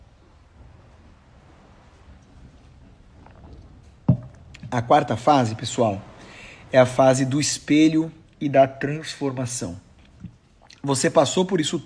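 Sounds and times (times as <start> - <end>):
cup set down with a sharp knock: 4.1 - 4.4
speech: 4.7 - 6.1, 6.7 - 9.8, 10.8 - 11.8
person sipping water: 10.0 - 10.8.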